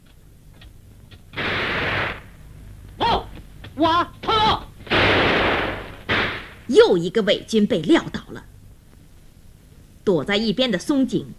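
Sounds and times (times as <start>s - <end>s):
gunshot: 1.4s - 2.3s, 4.9s - 6.7s
speech: 3.8s - 4.6s, 6.7s - 8.5s, 10.1s - 11.3s.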